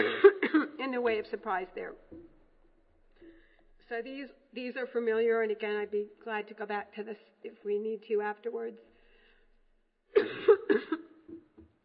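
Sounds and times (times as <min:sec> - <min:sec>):
person coughing: 0:00.0 - 0:00.8, 0:10.2 - 0:11.5
speech: 0:01.0 - 0:02.2, 0:03.9 - 0:08.9.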